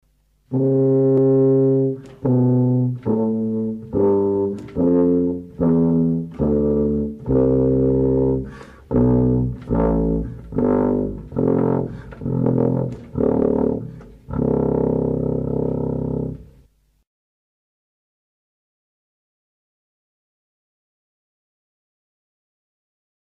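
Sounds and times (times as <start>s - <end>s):
brass tuba playing from high to low: 0.5s - 16.7s.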